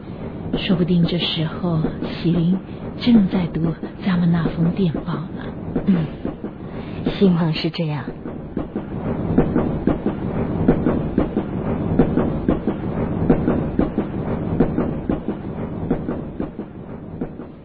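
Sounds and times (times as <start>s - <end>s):
train wheels rumbling on rails into a station: 0.0s - 17.6s
train wheels clickety-clack over track joints: 0.1s - 17.6s
speech: 0.6s - 6.2s, 7.2s - 8.2s.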